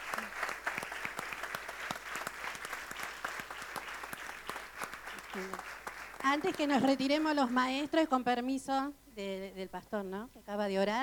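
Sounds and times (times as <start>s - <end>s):
applause from a church congregation after a prayer: 0.0s - 7.6s
speech: 5.4s - 11.0s.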